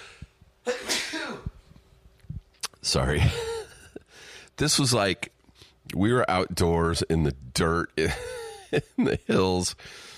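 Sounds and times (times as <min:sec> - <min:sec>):
person sneezing: 0:00.0 - 0:01.6
speech: 0:02.9 - 0:03.5, 0:04.6 - 0:10.1.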